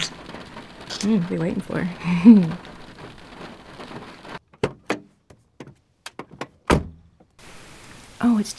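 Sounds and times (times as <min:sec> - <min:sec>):
rain falling on an isolated field: 0:00.0 - 0:04.4, 0:07.3 - 0:08.5
speech: 0:01.0 - 0:02.7, 0:08.4 - 0:08.5
sharp uneven knocks and thumps: 0:03.9 - 0:07.3.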